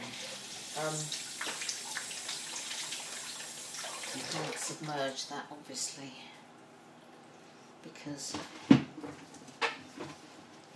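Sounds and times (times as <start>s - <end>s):
tap water running while rinsing out the bottom of a steamer: 0.0s - 5.2s
speech: 0.8s - 1.3s, 4.1s - 6.4s, 7.8s - 9.3s.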